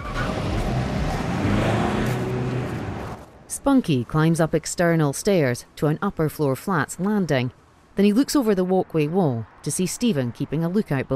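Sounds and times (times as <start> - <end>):
black car engine rumble driving off: 0.0 - 3.5
speech: 3.6 - 11.1.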